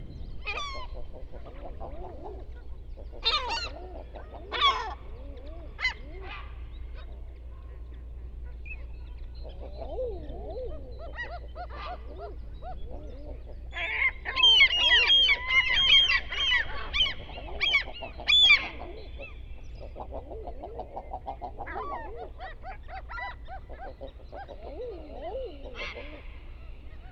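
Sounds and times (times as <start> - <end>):
European herring gull Larus argentatus calling: 0.0 - 27.1.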